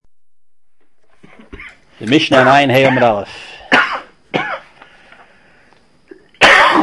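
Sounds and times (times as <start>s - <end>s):
harsh coughs: 1.2s - 1.8s, 2.8s - 4.8s, 6.4s - 6.8s
speech: 2.0s - 3.5s.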